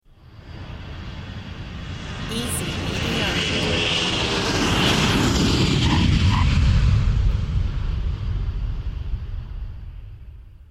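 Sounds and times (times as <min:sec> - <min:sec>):
jet plane: 0:00.0 - 0:10.6.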